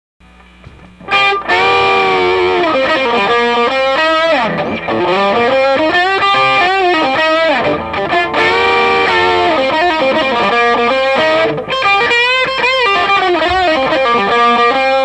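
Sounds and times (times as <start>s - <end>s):
Firebird guitar through rear pickup: 0.4s - 15.0s.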